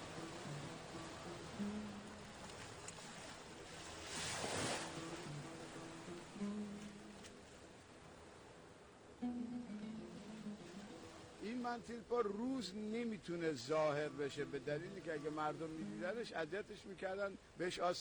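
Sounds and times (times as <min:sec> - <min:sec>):
rough stormy sea waves at night: 0:00.0 - 0:17.9
speech: 0:11.7 - 0:17.9.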